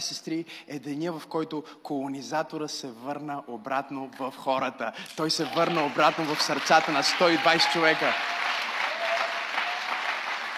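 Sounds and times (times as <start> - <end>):
speech: 0.0 - 8.5
audience applauding: 5.3 - 10.5.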